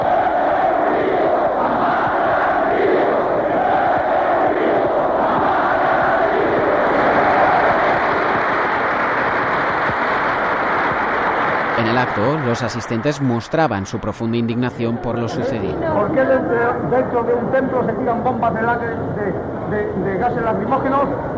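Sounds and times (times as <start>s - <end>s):
large crowd shouting at a funeral: 0.0s - 13.4s
speech: 12.2s - 21.3s.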